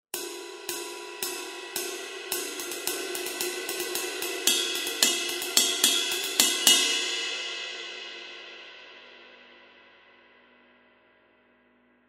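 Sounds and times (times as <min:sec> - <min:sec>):
22 inch HHX Legacy ride cymbal: 0:00.2 - 0:08.2.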